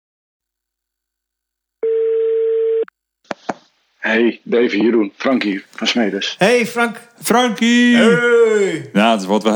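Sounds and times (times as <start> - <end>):
outgoing telephone call ringback tones: 1.8 - 2.9
speech: 4.1 - 9.5.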